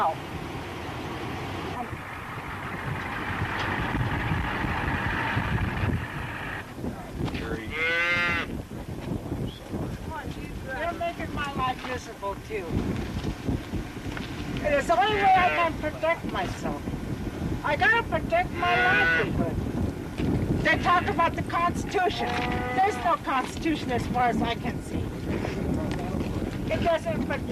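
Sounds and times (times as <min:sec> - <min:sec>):
speech: 0:00.0 - 0:00.3, 0:14.7 - 0:16.9, 0:17.6 - 0:19.7, 0:20.6 - 0:24.8, 0:26.7 - 0:27.5
wind buffeting the microphone: 0:00.0 - 0:27.5
cattle mooing: 0:07.7 - 0:08.5, 0:18.6 - 0:19.4, 0:22.2 - 0:23.2.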